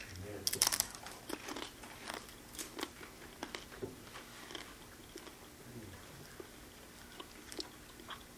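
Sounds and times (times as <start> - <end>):
several people chewing communion bread: 0.0 - 8.3.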